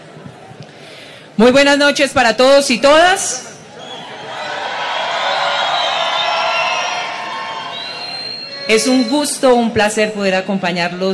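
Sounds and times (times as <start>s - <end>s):
speech: 1.4s - 3.5s, 8.7s - 11.1s
large crowd shouting and cheering: 3.6s - 9.8s
scattered whoops: 3.8s - 9.3s.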